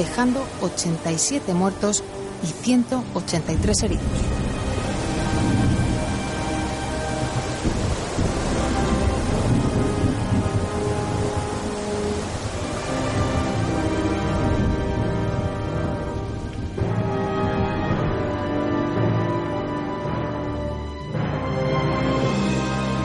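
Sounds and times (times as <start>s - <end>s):
speech: 0.0s - 4.6s
heavy rain in a thunderstorm: 0.0s - 23.0s
deep thunder rumbling: 3.4s - 20.2s.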